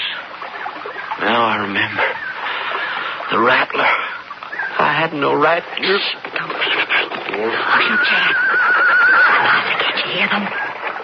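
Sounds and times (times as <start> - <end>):
rough noisy background: 0.0 - 11.0
speech: 1.2 - 2.1, 3.3 - 4.1, 5.0 - 6.8, 7.4 - 10.7
horse whinnying loudly with a high wavering neigh: 6.7 - 10.4.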